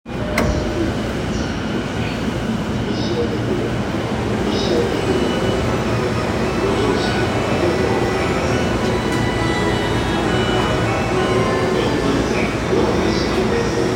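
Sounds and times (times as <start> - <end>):
JR Chuo Line rapid train sounds: 0.1 - 13.9.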